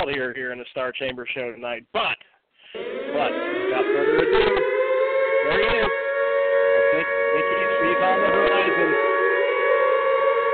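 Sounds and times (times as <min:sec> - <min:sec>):
speech: 0:00.0 - 0:04.7, 0:05.4 - 0:06.0, 0:06.9 - 0:09.2
air raid siren wailing: 0:02.7 - 0:10.5.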